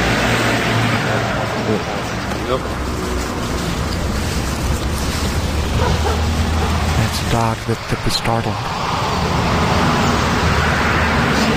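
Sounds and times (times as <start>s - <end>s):
road traffic roar: 0.0s - 11.5s
speech: 2.5s - 2.8s, 7.3s - 9.0s.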